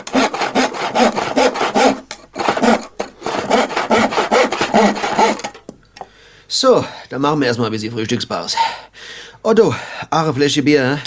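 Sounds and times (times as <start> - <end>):
hand saw cutting wood in a carpentry workshop: 0.0 - 5.7
speech: 6.6 - 11.0.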